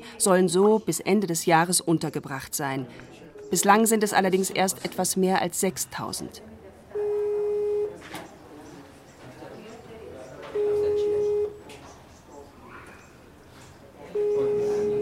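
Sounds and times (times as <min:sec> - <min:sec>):
faint noise: 0:00.0 - 0:14.9
speech: 0:00.2 - 0:06.6
telephone busy signal beeps: 0:07.0 - 0:07.9, 0:10.6 - 0:11.6, 0:14.2 - 0:14.9.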